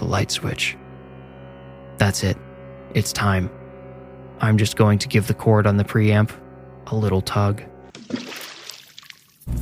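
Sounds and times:
speech: 0.1 - 0.8, 2.0 - 3.6, 4.4 - 8.2
cold water trickling and splashing in a bathtub: 7.9 - 9.5.

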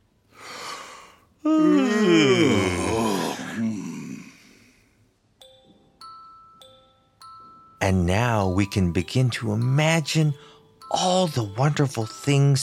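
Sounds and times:
person yawning: 0.4 - 4.7
speech: 1.5 - 3.7, 7.9 - 12.6.

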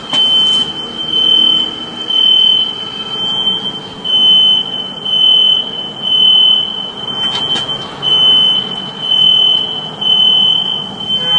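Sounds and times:
house alarm blaring after a power cut in a windstorm: 0.0 - 11.3.

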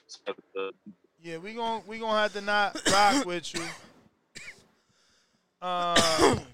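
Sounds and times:
speech: 0.1 - 3.9, 5.6 - 6.5
rasping cough with a throaty strained edge: 2.3 - 4.6, 5.8 - 6.5.

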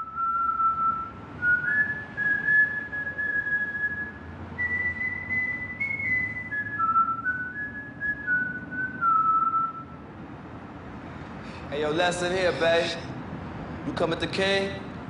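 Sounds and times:
man whistling a sing-song nursery-rhyme melody: 0.0 - 10.0
low rumble: 0.0 - 15.0
speech: 11.7 - 13.1, 13.8 - 14.8.

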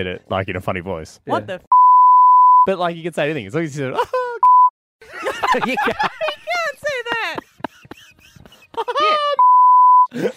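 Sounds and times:
speech: 0.0 - 1.8, 2.6 - 4.2, 5.0 - 6.2, 10.1 - 10.3
censor beep over a swear word: 1.7 - 2.7, 4.4 - 4.7, 9.4 - 10.1
laughter: 3.9 - 4.4, 5.0 - 9.4, 10.1 - 10.3.

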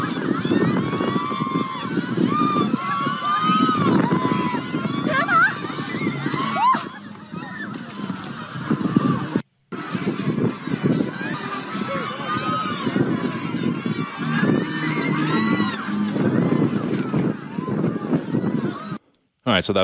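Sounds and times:
strong gusting wind roaring and buffeting: 0.0 - 19.0
speech: 19.6 - 19.8.

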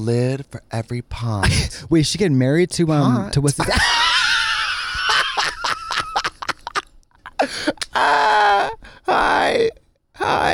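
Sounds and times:
speech: 0.0 - 4.1
laughter: 3.6 - 8.4
people yelling and groaning: 7.8 - 9.6
long sustained shouts: 7.9 - 9.7.

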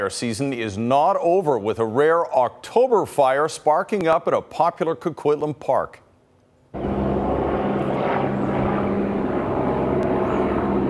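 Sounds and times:
speech: 0.0 - 6.0
firefighting helicopter flying overhead: 6.8 - 10.8.

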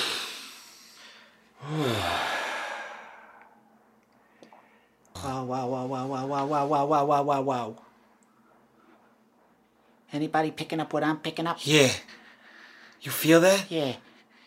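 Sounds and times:
person breathing deeply: 0.0 - 5.0
speech: 5.2 - 7.8, 10.1 - 12.2, 13.0 - 14.1.

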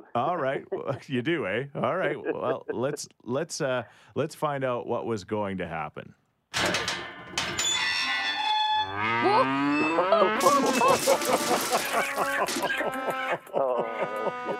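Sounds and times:
laughter: 0.0 - 3.1, 9.3 - 14.5
speech: 0.2 - 6.8, 9.0 - 14.5
busy farmyard noise: 7.8 - 14.5
cow mooing: 8.8 - 10.7, 12.7 - 14.5.

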